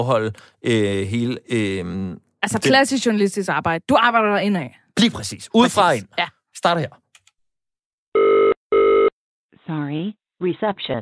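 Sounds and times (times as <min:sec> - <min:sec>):
speech: 0:00.0 - 0:07.0, 0:09.7 - 0:11.0
electronic ring tones of an outgoing phone call: 0:08.2 - 0:09.1.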